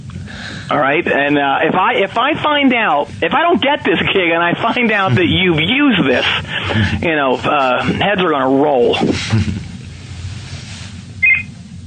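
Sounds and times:
steady low hum: 0.0s - 11.8s
speech: 0.7s - 9.6s
short electronic phone beep: 11.2s - 11.5s.

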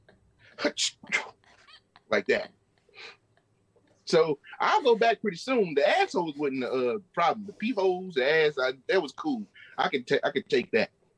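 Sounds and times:
speech: 0.6s - 1.2s, 2.1s - 3.2s, 4.1s - 11.0s
voice imitating a sneeze: 0.6s - 1.4s.

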